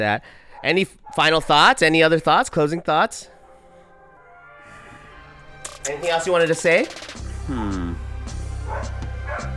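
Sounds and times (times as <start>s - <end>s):
speech: 0.0s - 3.3s, 5.8s - 7.8s
dogs barking and yipping: 0.5s - 1.7s, 8.6s - 9.5s.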